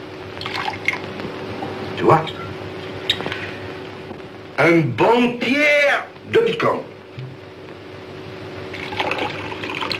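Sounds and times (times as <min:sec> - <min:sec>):
low hum: 0:00.0 - 0:09.9
water being poured into a lemon drink: 0:00.4 - 0:01.0, 0:08.7 - 0:09.9
speech: 0:02.0 - 0:02.4, 0:04.6 - 0:06.9.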